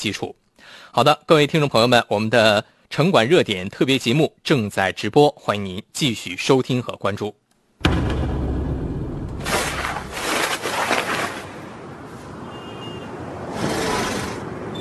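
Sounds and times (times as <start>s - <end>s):
speech: 0.0s - 8.1s
low rumble at a railway station: 7.8s - 10.3s
train hissing and rushing at a railway station: 13.5s - 14.5s.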